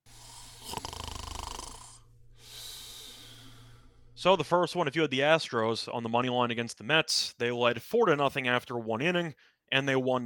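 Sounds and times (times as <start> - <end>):
person snoring with a rattling vibration: 0.1 - 3.9
speech: 4.2 - 10.2.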